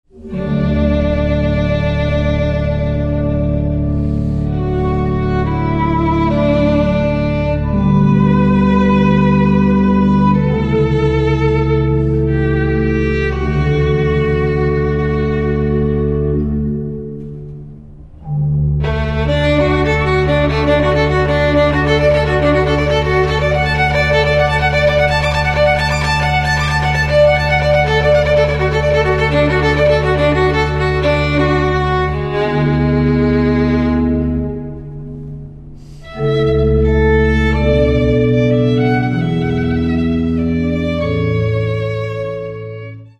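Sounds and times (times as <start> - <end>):
violin: 0.0 - 43.1.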